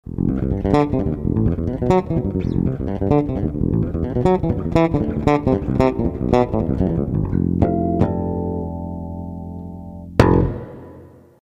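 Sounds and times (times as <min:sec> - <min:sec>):
room reverb: 0:00.1 - 0:11.4.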